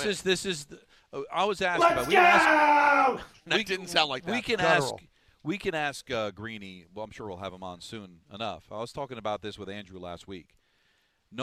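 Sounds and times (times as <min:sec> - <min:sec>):
speech: 0:00.0 - 0:10.6
man screaming excitedly: 0:01.8 - 0:03.3.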